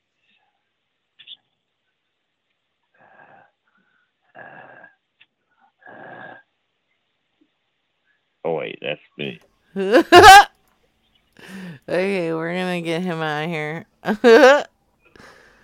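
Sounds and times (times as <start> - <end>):
speech: 8.6 - 10.4, 11.9 - 14.7
laughter: 9.8 - 10.5
heavy raspy breaths through a phone line: 11.4 - 11.9, 15.2 - 15.6.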